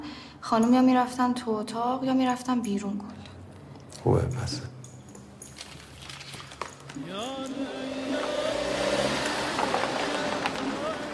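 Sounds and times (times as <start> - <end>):
noise in front of a cafe restaurant: 0.0 - 11.1
speech: 0.4 - 3.2, 4.0 - 4.8, 7.0 - 8.6
car engine revving as car pulls up and parks at night: 7.0 - 11.1.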